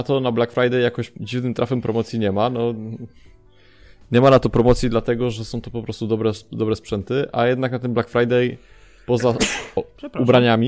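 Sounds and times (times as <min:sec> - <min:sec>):
speech: 0:00.0 - 0:03.4, 0:04.1 - 0:10.6
man sneezing: 0:09.4 - 0:09.8.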